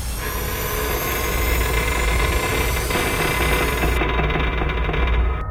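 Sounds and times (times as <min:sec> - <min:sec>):
ship engine screaming: 0:00.2 - 0:05.4.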